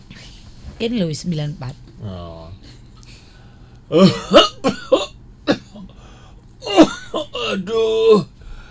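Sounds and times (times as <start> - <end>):
speech: 0.8 - 2.7, 3.9 - 4.8, 7.5 - 8.3
person coughing: 3.9 - 5.9, 6.6 - 7.9.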